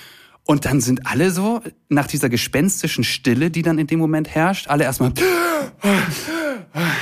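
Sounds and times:
speech: 0.5 - 7.0
person gasping for breath after holding breath: 5.2 - 7.0.

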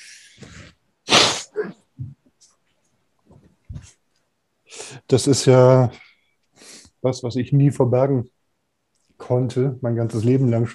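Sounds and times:
loud forceful nose blow: 0.0 - 1.8
speech: 5.1 - 6.0, 7.0 - 8.4, 9.3 - 10.7.

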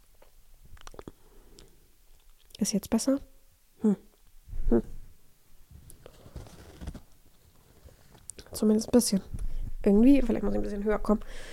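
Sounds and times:
clicks and gulps: 0.2 - 2.6
wet mouth noises: 0.2 - 2.6
swallowing: 0.8 - 1.7
speech: 2.6 - 4.1, 4.7 - 4.9, 8.6 - 11.5.

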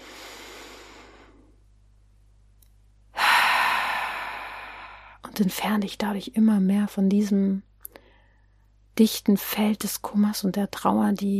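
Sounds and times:
slow deep breathing during a guided relaxation: 0.0 - 1.5, 3.1 - 5.2
speech: 5.4 - 7.7, 9.0 - 11.3.

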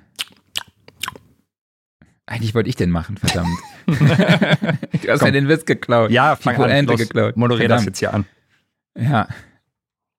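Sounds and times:
lip smacking while drinking: 0.0 - 1.3
speech: 2.3 - 8.4, 9.0 - 9.5
laughter: 3.3 - 5.4.

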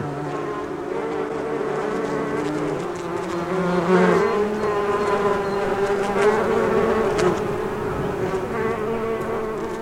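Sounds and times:
many bees buzzing: 0.0 - 9.8.

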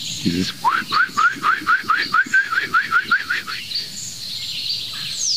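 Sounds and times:
wild bird mating call: 0.0 - 3.9
speech: 0.2 - 1.0.

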